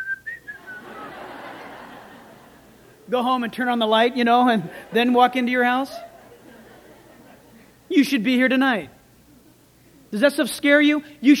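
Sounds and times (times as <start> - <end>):
person whistling: 0.0 - 1.2
laughter: 0.6 - 7.9
speech: 3.1 - 6.1, 8.0 - 9.0, 10.1 - 11.3.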